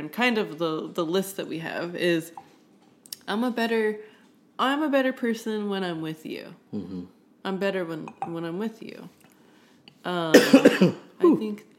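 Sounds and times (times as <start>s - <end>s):
speech: 0.0s - 2.5s, 3.3s - 9.2s, 10.0s - 11.7s
person coughing after inhaling a whiskey drink: 10.3s - 11.1s.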